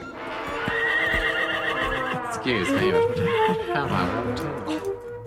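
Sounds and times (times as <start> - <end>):
horse whinnying loudly: 0.1 - 4.0
speech: 2.4 - 5.0.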